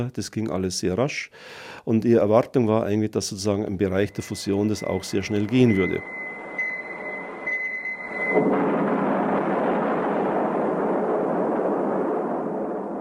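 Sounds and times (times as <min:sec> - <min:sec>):
speech: 0:00.0 - 0:06.2
thin steady high tone: 0:03.6 - 0:08.4
hydrogen bomb explosion roaring rumble: 0:04.2 - 0:13.0.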